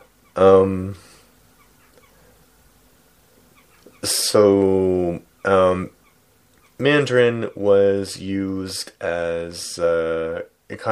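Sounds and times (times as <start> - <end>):
birds calling with harsh honking cries and strained shrieks: 0.0 - 9.8
speech: 0.4 - 1.1, 4.3 - 6.0, 6.8 - 10.9.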